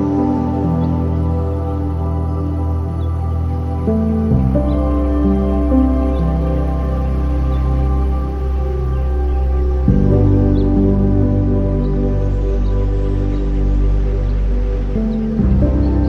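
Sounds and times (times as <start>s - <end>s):
soft ambient music with long sustained chords: 0.0s - 16.0s
wind over summer countryside: 0.0s - 16.0s.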